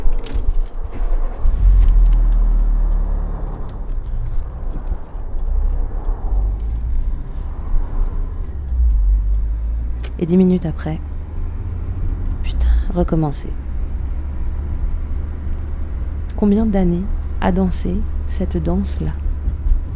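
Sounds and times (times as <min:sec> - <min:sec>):
car keys jangling: 0:00.0 - 0:06.9
car engine starting and pulling away beside a motorway: 0:00.0 - 0:19.9
speech: 0:10.2 - 0:11.1, 0:13.0 - 0:13.6, 0:16.4 - 0:19.2.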